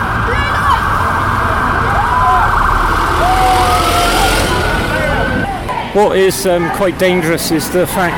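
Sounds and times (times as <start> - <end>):
ambulance siren wailing with rising and falling tones: 0.0 - 5.7
dense steady rumble of traffic: 0.0 - 8.1
indistinct voices: 0.0 - 8.1
outdoor crowd noise: 0.0 - 8.1
speech: 6.0 - 8.1.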